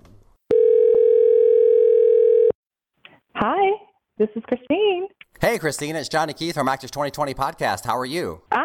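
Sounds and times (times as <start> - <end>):
telephone ringing tone of an outgoing call: 0.5 - 2.6
speech: 4.2 - 8.6.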